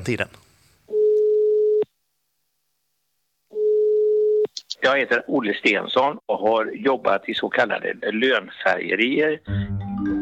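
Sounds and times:
speech: 0.0 - 0.4, 4.8 - 10.2
telephone call ringback tones: 0.9 - 1.9, 3.6 - 4.4.

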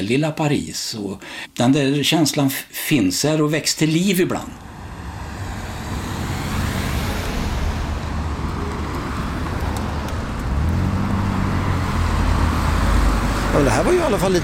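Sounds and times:
speech: 0.0 - 4.7, 13.6 - 14.4
dense road traffic with cars streaming past: 4.6 - 14.4.

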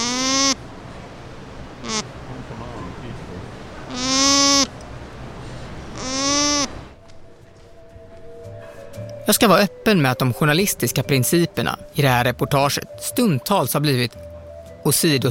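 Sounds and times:
herd of alpacas bleating in Telford, central England: 0.0 - 0.6, 1.8 - 2.1, 3.9 - 4.7, 5.9 - 6.9
low noise: 0.0 - 15.3
speech: 9.3 - 14.2, 14.8 - 15.3.

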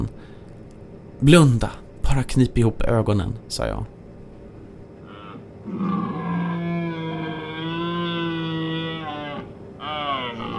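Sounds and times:
speech: 1.2 - 4.0
eerie wailing howl: 5.0 - 10.5.

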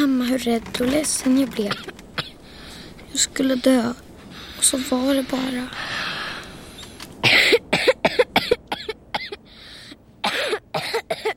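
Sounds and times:
speech: 0.0 - 2.0, 3.1 - 6.0
person gasping: 5.7 - 6.6, 9.4 - 10.0
person coughing hard: 7.2 - 9.4, 10.2 - 11.3.

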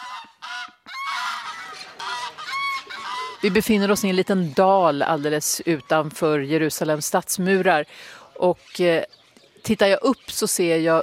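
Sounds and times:
geese honking: 0.0 - 7.0
speech: 3.4 - 11.0.

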